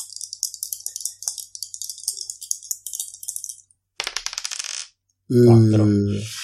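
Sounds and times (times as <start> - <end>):
two dice rattling: 4.0 - 5.0
speech: 5.3 - 6.4.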